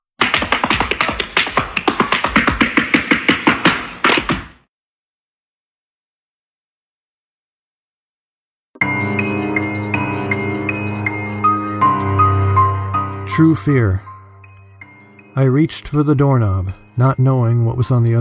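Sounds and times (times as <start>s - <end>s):
tap dancing shoes clattering: 0.2s - 4.6s
music with sustained tones: 8.8s - 18.1s
speech: 13.4s - 14.1s, 15.4s - 18.1s.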